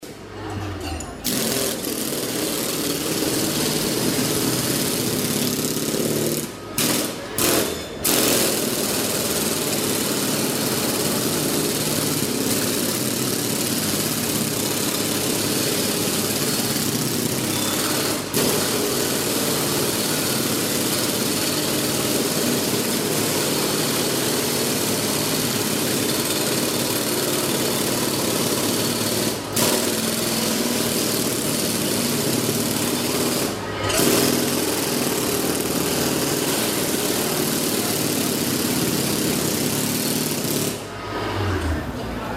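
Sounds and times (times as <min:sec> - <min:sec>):
pneumatic hammers on a street in Havana: 0:00.0 - 0:42.2.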